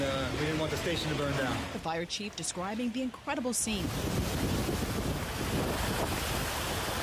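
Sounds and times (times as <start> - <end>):
churning floodwater in Florida: 0.0 - 7.0
surf-like wash of floodwater: 0.0 - 7.0
speech: 0.3 - 4.6
roaring wind from a hurricane buffeting the microphone in Florida: 3.7 - 7.0.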